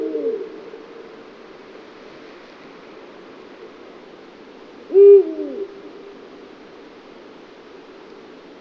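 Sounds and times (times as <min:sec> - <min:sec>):
Eurasian eagle-owl giving deep short hoots: 0:00.0 - 0:00.9, 0:04.9 - 0:05.8
steady low hiss: 0:00.0 - 0:08.6.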